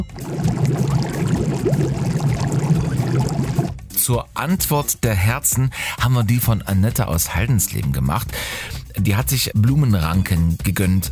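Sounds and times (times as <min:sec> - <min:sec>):
jacuzzi water churning and bubbling: 0:00.0 - 0:03.8
speech: 0:04.1 - 0:11.0.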